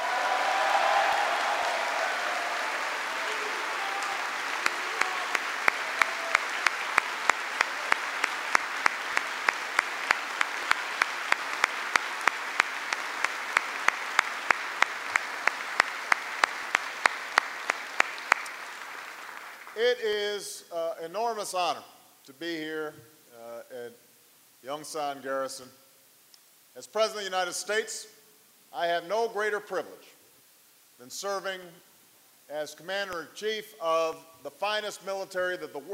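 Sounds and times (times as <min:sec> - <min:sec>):
large audience applauding a Medal of Honor recipient at Yongsan Garrison: 0:00.0 - 0:19.8
speech: 0:19.8 - 0:23.1, 0:24.6 - 0:25.8, 0:26.8 - 0:30.1, 0:31.0 - 0:31.9, 0:32.5 - 0:35.9.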